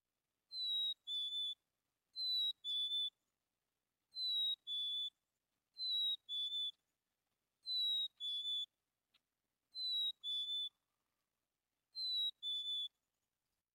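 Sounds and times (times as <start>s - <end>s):
chickadee singing two-tone whistled territorial song in spring: 0.5s - 1.6s, 2.2s - 3.2s, 4.1s - 5.2s, 5.8s - 6.8s, 7.6s - 8.8s, 9.7s - 10.8s, 11.9s - 13.0s.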